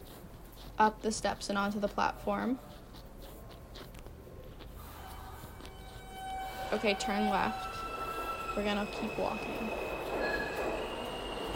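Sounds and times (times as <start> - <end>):
speech: 0.8 - 2.7, 6.8 - 7.7, 8.6 - 9.8
high metallic wheel squeal of subway train: 4.6 - 11.5
subway train rumbling past on elevated tracks: 4.8 - 11.5.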